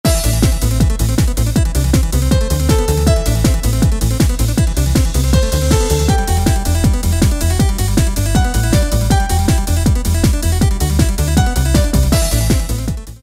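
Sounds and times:
eurobeat music: 0.0 - 13.2.

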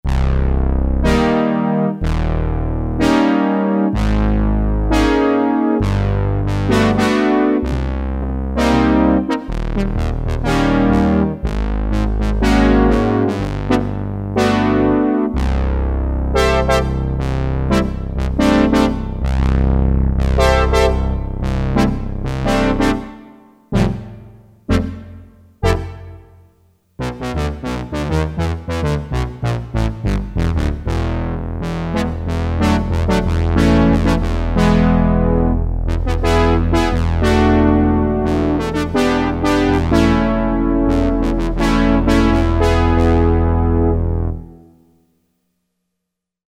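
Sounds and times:
low brass synthesizer patch: 0.0 - 44.7.

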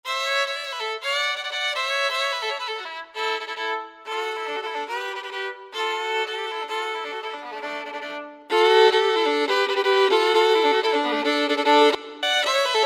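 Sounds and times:
fiddle licks: 0.4 - 12.8.

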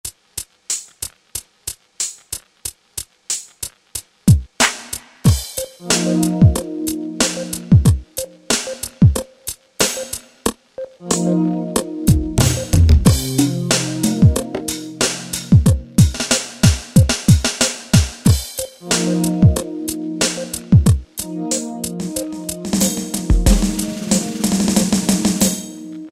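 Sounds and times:
trip hop keyboard style pattern: 5.3 - 26.1.

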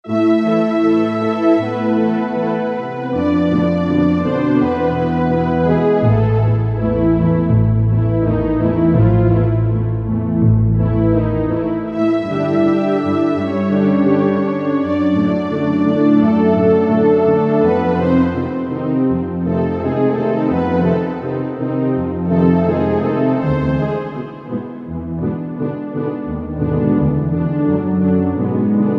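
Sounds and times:
orchestral music on a Korg MSC-4S Orchestra: 0.1 - 28.9.

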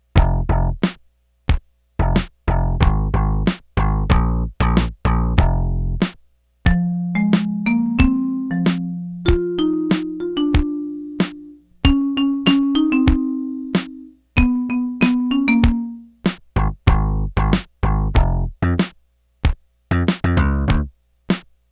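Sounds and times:
bass: 0.0 - 1.0, 2.0 - 19.0, 19.9 - 21.0
drums: 0.0 - 21.7
marimba: 6.7 - 16.1.

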